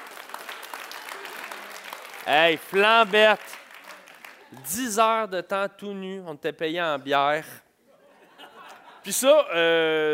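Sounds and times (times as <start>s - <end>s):
group applauding with dense overlapping claps: 0.0s - 5.0s
speech: 2.3s - 3.5s, 4.5s - 7.6s, 9.0s - 10.1s
laughter: 7.9s - 9.2s.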